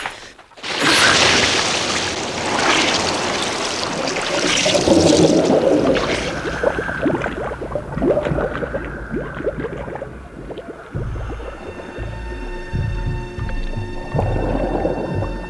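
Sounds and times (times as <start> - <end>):
splash of two divers plunging into a reservoir: 0.0 - 15.4
underwater bubbling: 0.0 - 15.4
rumbling underwater ambience: 3.0 - 15.4
low droning underwater hum: 5.8 - 15.4.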